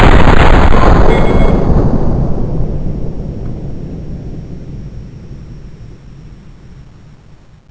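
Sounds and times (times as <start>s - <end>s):
Mk23 pistol firing: 0.0s - 2.8s.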